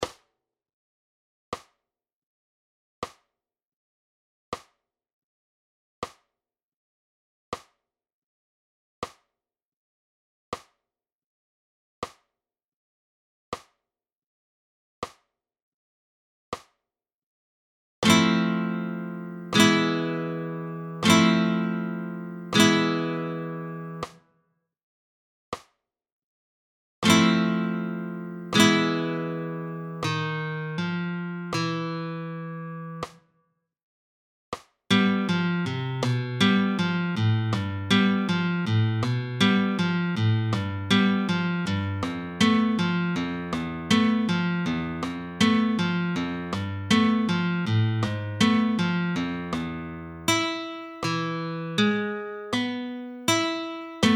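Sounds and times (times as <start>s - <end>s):
flamenco guitar playing alzapua: 18.0s - 24.1s, 27.0s - 33.1s, 34.9s - 54.1s.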